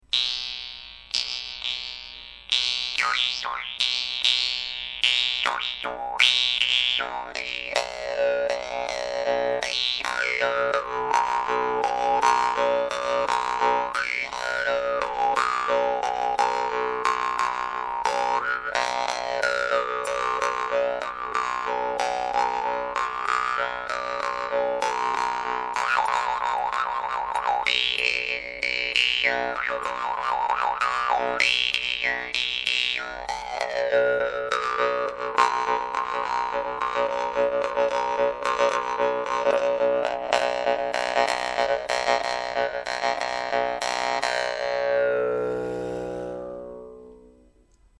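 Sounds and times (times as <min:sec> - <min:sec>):
vargan jaw harp: 0:00.1 - 0:47.5.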